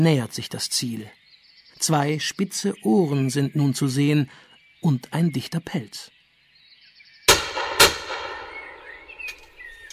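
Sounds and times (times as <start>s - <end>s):
speech: 0.0s - 1.2s, 1.8s - 6.2s
hunting rifle shots fired by a hunter at a wildcat in the Spessart: 7.3s - 8.9s
quieter crack: 7.3s - 9.5s.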